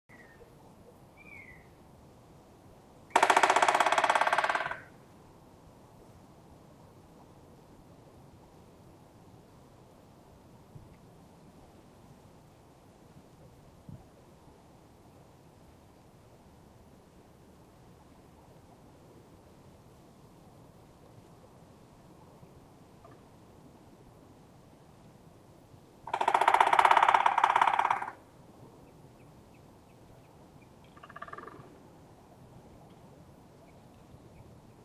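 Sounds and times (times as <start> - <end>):
Black Woodpecker Dryocopus martius: 3.1 - 4.9, 26.1 - 28.2, 30.6 - 31.7.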